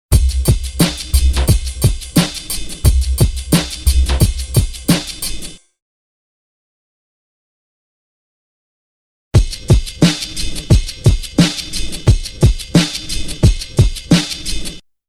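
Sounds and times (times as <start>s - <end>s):
drum loop: 0.1s - 5.6s, 9.4s - 14.8s.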